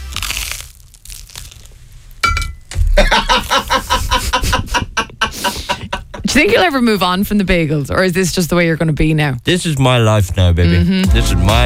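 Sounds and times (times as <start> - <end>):
person biting into crusty bread spread with butter: 0.0 - 2.2
laughter: 2.9 - 6.6
speech: 3.0 - 4.6, 6.4 - 11.6.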